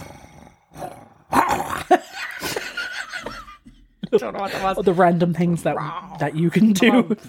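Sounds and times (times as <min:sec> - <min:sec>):
person imitating a dog growl: 0:00.0 - 0:01.9, 0:05.6 - 0:07.1
laughter: 0:01.9 - 0:05.1
speech: 0:04.2 - 0:07.2.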